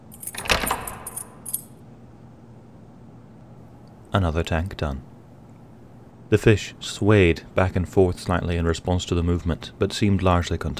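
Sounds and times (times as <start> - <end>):
ring of many keys jangling on a woman's belt: 0.0 - 1.8
speech: 4.2 - 5.1, 6.3 - 10.7.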